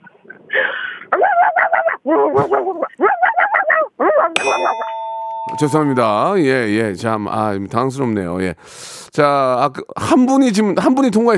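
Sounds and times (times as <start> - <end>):
caller on a phone line imitating a dog barking: 1.1 - 4.4
speech: 2.0 - 3.0, 5.6 - 11.3
bright bell-like ding: 4.4 - 6.8.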